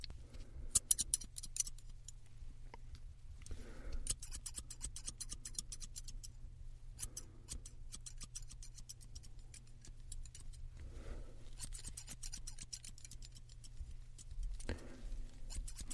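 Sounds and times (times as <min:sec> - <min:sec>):
faint steady low hum: 0:00.0 - 0:15.9
scissors cutting hair: 0:04.0 - 0:06.3, 0:07.0 - 0:10.6, 0:11.6 - 0:14.8, 0:15.5 - 0:15.9.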